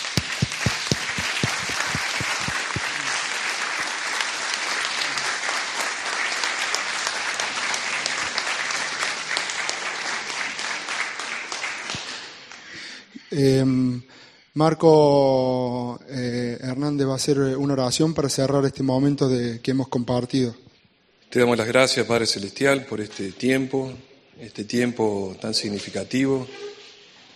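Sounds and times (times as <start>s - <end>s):
crowd applause: 0.0s - 12.5s
speech: 13.4s - 20.7s, 21.3s - 26.7s.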